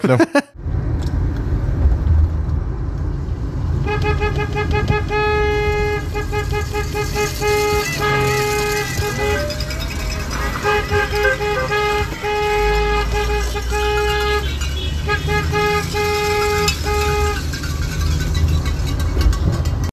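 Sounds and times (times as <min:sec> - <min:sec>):
laughter: 0:00.0 - 0:00.5, 0:09.2 - 0:12.5
speech: 0:00.0 - 0:00.6
low rumble of engine and road noise: 0:00.0 - 0:19.9
car horn honking in long blasts during a strike: 0:03.8 - 0:18.6.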